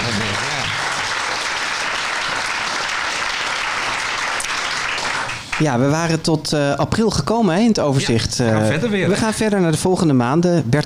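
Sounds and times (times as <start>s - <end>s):
room full of people applauding: 0.0s - 5.6s
speech: 5.6s - 10.8s.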